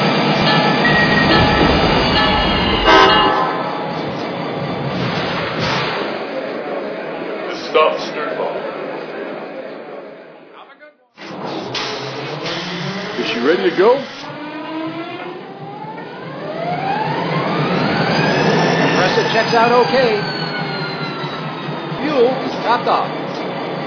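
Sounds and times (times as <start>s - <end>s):
passenger train rumbling on station track: 0.0s - 10.6s, 11.2s - 23.8s.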